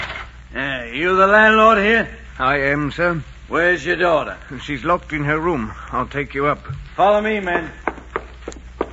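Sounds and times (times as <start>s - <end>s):
speech: 0.6s - 7.8s
heavy boot steps of marching soldiers: 7.4s - 8.9s.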